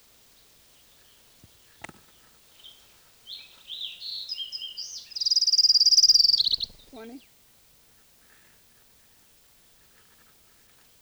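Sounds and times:
Orange-crowned Warbler song: 0:00.3 - 0:07.3.

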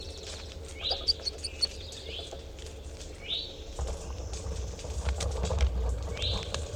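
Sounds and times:
low rumbling noise: 0:00.2 - 0:06.7
captive crossbill chip calls in a small cage: 0:00.6 - 0:02.4.

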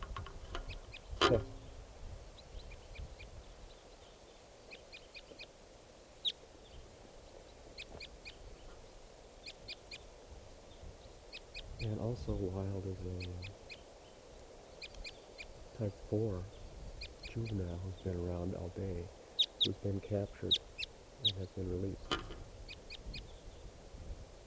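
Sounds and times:
bird chirping: 0:00.0 - 0:05.6, 0:06.2 - 0:23.7
speech: 0:01.3 - 0:01.6, 0:12.2 - 0:13.6, 0:15.8 - 0:16.6, 0:17.3 - 0:22.5.

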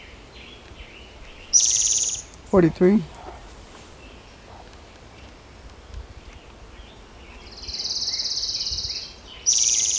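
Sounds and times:
orange-crowned warbler singing a high thin trill: 0:00.0 - 0:04.6, 0:06.8 - 0:09.9
quiet hiss: 0:00.0 - 0:09.9
speech: 0:02.5 - 0:03.1.

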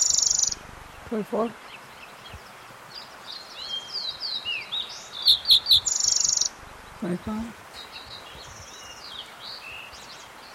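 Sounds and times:
fox sparrow singing indoors in a bathroom: 0:00.0 - 0:10.5
steady faint hiss: 0:00.0 - 0:10.5
speech: 0:01.1 - 0:01.6, 0:07.0 - 0:07.6.

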